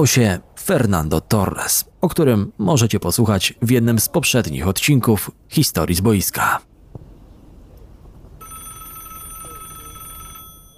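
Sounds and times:
speech: 0.0 - 6.7
low rumble: 0.0 - 8.4
telephone bell ringing: 8.4 - 10.7.

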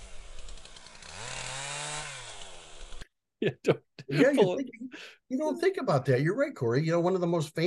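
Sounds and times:
gas chainsaw engine rumbling and revving: 0.0 - 3.0
laughter: 3.4 - 5.9
speech: 3.4 - 7.6.

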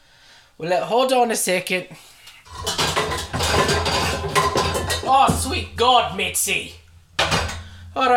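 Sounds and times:
speech: 0.6 - 2.7, 5.1 - 6.8, 8.0 - 8.1
cooking pot being taken out and handled in a kitchen: 2.5 - 6.1, 7.2 - 7.8.

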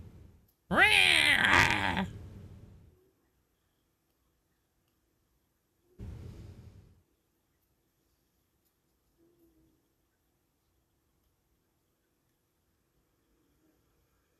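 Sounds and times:
cats fighting and yowling: 0.7 - 2.2.

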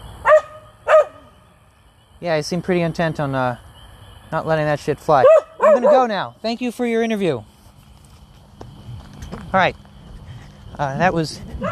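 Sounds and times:
dog barking yowl: 0.2 - 1.3, 5.2 - 6.2, 11.6 - 11.7
dog yipping: 0.3 - 1.3, 5.2 - 6.1
speech: 2.2 - 3.7, 4.3 - 7.5, 9.5 - 9.8, 10.8 - 11.7.

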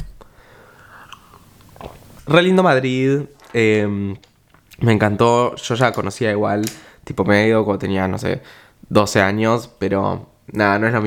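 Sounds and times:
person swallowing: 0.0 - 2.2
person sipping a drink with soft slurping: 0.7 - 2.2
speech: 2.3 - 11.0.

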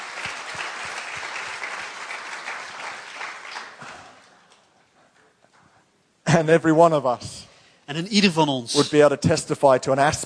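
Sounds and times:
audience applause: 0.0 - 4.7
speech: 6.4 - 10.2.

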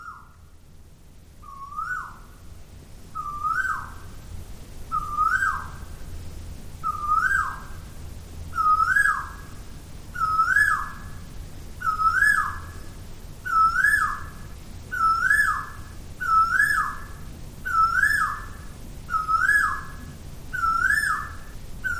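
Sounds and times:
loud strange bird call of whistled hoots: 0.0 - 0.4, 1.4 - 2.3, 3.2 - 4.0, 4.9 - 5.8, 6.8 - 7.7, 8.5 - 9.4, 10.2 - 11.1, 11.8 - 12.8, 13.4 - 21.9
faint noise: 0.0 - 21.9.

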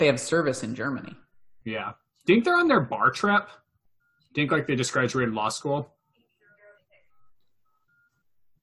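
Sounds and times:
speech: 0.0 - 3.6, 4.3 - 6.0
electronic keypad beeps of a cell phone: 7.0 - 8.6.

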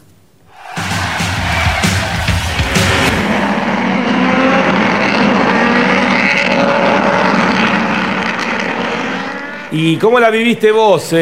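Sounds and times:
Turismo Carretera stock car engines roaring in a race: 0.6 - 9.8
speech: 9.7 - 11.1.

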